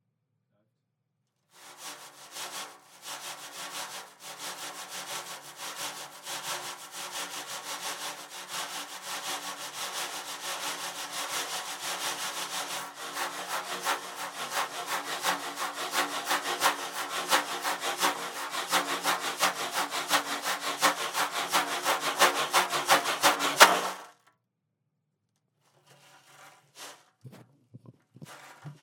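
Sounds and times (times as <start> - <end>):
shaking: 8.6 - 24.1, 26.2 - 28.8.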